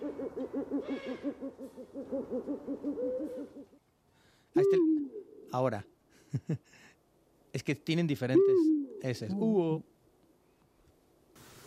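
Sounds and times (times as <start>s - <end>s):
Spanish eagle-owl hooting: 0.0s - 3.8s, 4.6s - 5.5s, 8.3s - 9.3s
speech: 5.5s - 6.9s, 7.6s - 9.9s.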